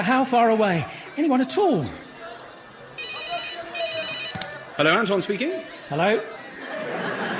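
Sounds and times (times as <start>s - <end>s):
speech: 0.0s - 2.0s, 4.8s - 7.2s
faint murmur of chatter: 0.0s - 7.3s
telephone ringing in trilling bursts: 3.0s - 4.6s
laughter: 6.3s - 7.3s.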